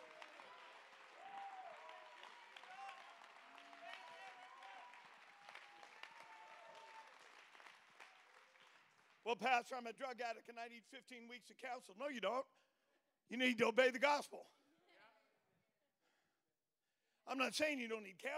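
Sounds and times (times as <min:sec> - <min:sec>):
crowd applauding: 0:00.0 - 0:09.5
speech: 0:09.3 - 0:12.6, 0:13.3 - 0:14.6, 0:17.3 - 0:18.3.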